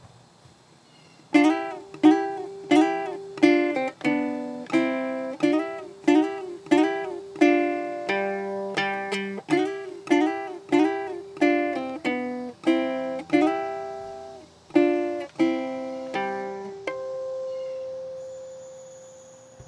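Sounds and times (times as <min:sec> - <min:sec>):
harmonic melody slide in C: 0:01.4 - 0:19.0.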